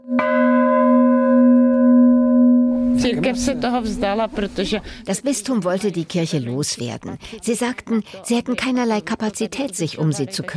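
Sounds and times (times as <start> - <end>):
church bell struck by hand at the top of a church tower: 0.0 - 3.1
speech: 3.0 - 10.5.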